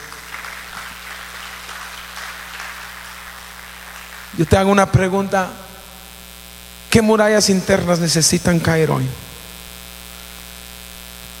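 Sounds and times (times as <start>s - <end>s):
crowd clapping: 0.0s - 4.8s
faint low hum: 0.0s - 11.3s
speech: 4.3s - 5.6s, 6.9s - 9.3s.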